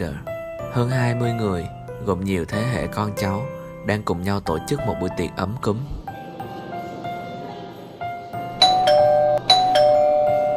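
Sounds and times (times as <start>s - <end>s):
speech: 0.0s - 6.0s
doorbell chiming ding-dong at a family home: 8.6s - 10.5s.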